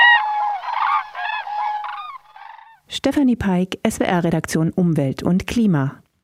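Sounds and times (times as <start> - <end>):
common cranes trumpeting: 0.0 - 2.8
speech: 3.0 - 6.0.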